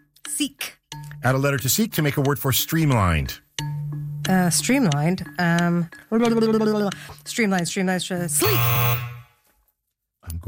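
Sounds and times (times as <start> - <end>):
speech: 0.4 - 3.4, 4.3 - 9.1
game show buzzer with harsh electronic drone: 8.4 - 9.4.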